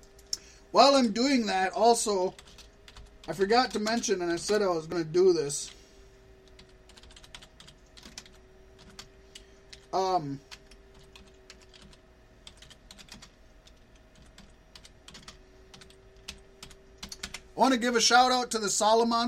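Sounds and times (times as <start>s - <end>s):
speech: 0.7s - 2.5s, 3.2s - 5.8s, 10.0s - 10.5s, 17.6s - 19.2s
fingers typing a search on a computer keyboard: 2.3s - 4.6s, 6.5s - 9.9s, 10.6s - 17.5s.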